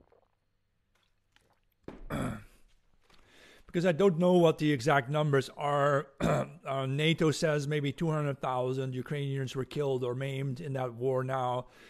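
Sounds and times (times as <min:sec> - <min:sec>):
sipping a drink: 0:00.0 - 0:03.4
swallowing gulp: 0:01.0 - 0:02.8
speech: 0:03.7 - 0:11.8.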